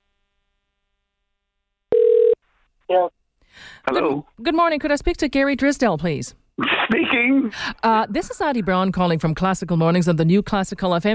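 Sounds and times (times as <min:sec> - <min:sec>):
electronic telephone ringing tone on a phone line: 0:01.9 - 0:02.4
speech: 0:02.9 - 0:03.2, 0:03.8 - 0:11.1.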